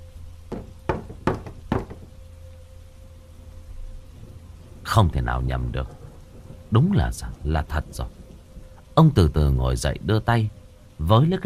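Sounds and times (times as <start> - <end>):
faint steady tone: 0.0 - 11.4
sharp knocking: 0.5 - 2.2
speech: 5.0 - 6.0, 6.7 - 8.2, 9.0 - 11.4.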